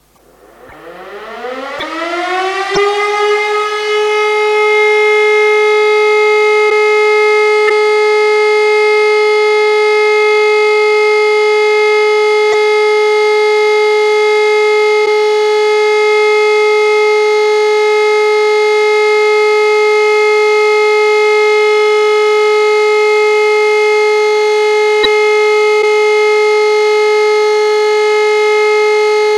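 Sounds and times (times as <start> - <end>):
siren all-clear signal: 0.0 - 29.3.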